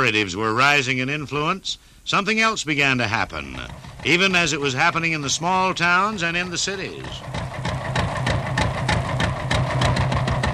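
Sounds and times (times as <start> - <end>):
speech: 0.0 - 7.7
tractor engine idling: 2.4 - 10.5.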